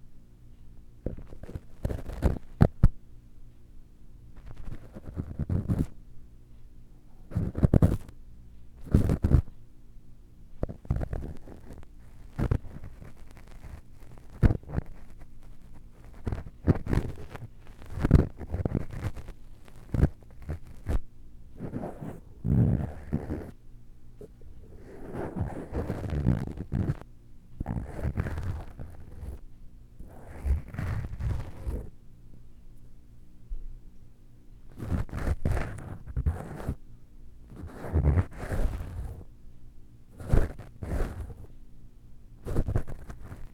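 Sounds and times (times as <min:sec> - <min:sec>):
faint steady low hum: 0:00.0 - 0:43.5
ear cleaning tool rubbing: 0:01.1 - 0:02.7, 0:07.3 - 0:08.1, 0:08.8 - 0:09.4, 0:10.6 - 0:21.0, 0:21.6 - 0:23.5, 0:24.6 - 0:27.0, 0:27.6 - 0:29.4, 0:30.0 - 0:31.9, 0:34.7 - 0:36.8, 0:37.5 - 0:39.2, 0:40.2 - 0:41.5, 0:42.4 - 0:43.5
ear cleaning with different tools scratching: 0:01.1 - 0:02.8, 0:04.5 - 0:05.9, 0:07.3 - 0:08.1, 0:08.8 - 0:09.5, 0:10.6 - 0:21.0, 0:21.6 - 0:23.5, 0:24.2 - 0:27.0, 0:27.6 - 0:29.4, 0:30.0 - 0:31.9, 0:34.7 - 0:36.8, 0:37.5 - 0:39.2, 0:40.2 - 0:41.5, 0:42.4 - 0:43.5.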